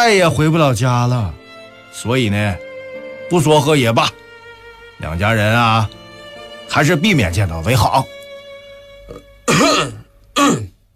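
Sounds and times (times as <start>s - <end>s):
speech: 0.0s - 1.4s, 2.0s - 2.7s, 3.3s - 4.2s, 5.0s - 6.0s, 6.7s - 8.2s, 9.1s - 10.7s
man coughing: 9.1s - 10.8s.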